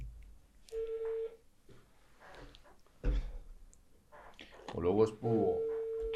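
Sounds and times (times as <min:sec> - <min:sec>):
telephone dial tone beep over a speakerphone: 0:00.7 - 0:01.4, 0:05.6 - 0:06.1
speech: 0:04.8 - 0:05.7.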